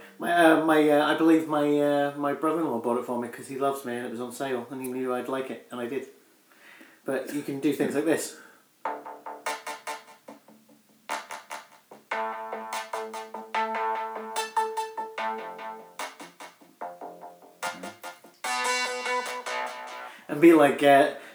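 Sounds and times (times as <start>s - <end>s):
speech: 0.2s - 6.2s, 7.1s - 9.0s, 20.4s - 21.2s
modular synthesizer app on a phone playing buzzy electronic notes: 8.9s - 20.3s.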